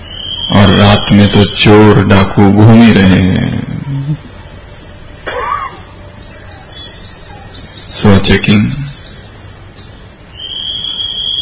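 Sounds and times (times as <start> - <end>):
speech: 0.5 - 4.3, 8.0 - 8.8
night watchman's whistle blowing a long shrill blast: 10.3 - 11.3.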